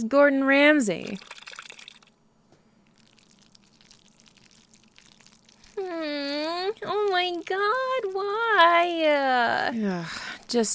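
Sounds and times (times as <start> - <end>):
speech: 0.0 - 1.4, 5.9 - 10.7
milk poured into a pot of cooking macaroni: 1.0 - 2.1, 2.9 - 8.8.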